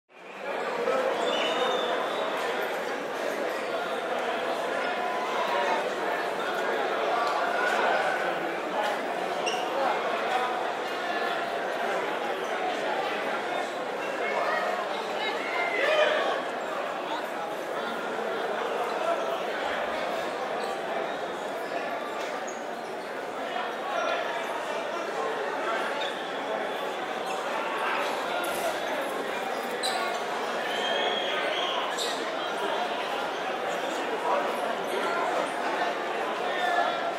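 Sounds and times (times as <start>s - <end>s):
hockey arena ambience: 0.1s - 37.1s.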